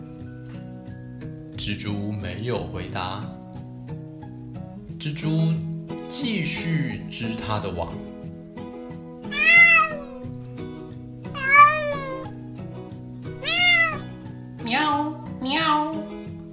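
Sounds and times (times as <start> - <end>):
soft plucked musical backing: 0.0 - 16.5
speech: 1.6 - 3.4, 5.0 - 8.1
cat meowing: 9.3 - 10.4, 11.3 - 12.4, 13.4 - 14.2.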